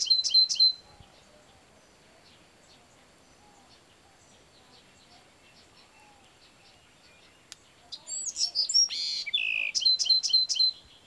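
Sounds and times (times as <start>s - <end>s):
Bewick's wren singing chirps and sharp high notes: 0.0s - 1.1s, 3.5s - 11.0s.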